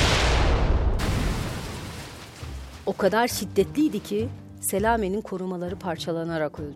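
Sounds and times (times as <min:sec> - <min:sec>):
loud explosion with deep roaring rumble: 0:00.0 - 0:02.4
speech: 0:02.9 - 0:06.7.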